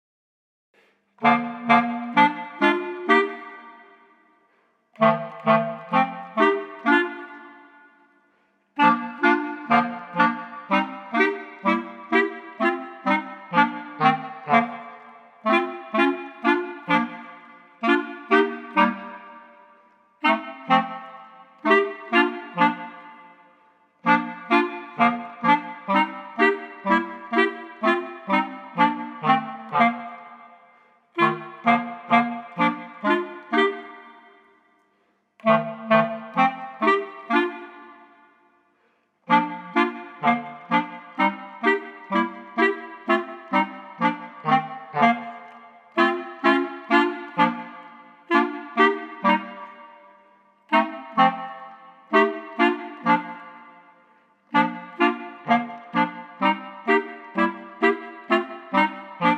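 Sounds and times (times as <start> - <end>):
clarinet trio: 1.2 - 4.2, 5.0 - 8.2, 8.8 - 34.6, 35.4 - 38.6, 39.3 - 59.3.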